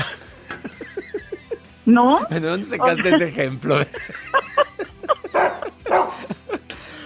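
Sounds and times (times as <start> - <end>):
laughter: 0.0 - 7.0
speech: 1.9 - 4.2
dog barking and yipping: 5.3 - 6.3.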